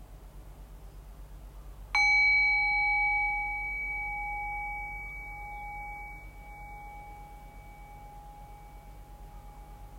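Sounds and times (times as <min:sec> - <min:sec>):
meditation bell struck and ringing: 0:02.0 - 0:09.9.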